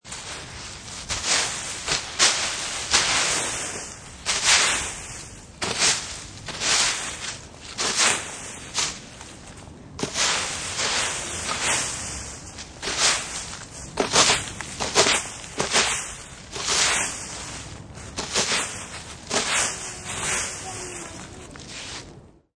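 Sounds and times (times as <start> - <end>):
raking leaves in a yard: 0.0 - 22.1.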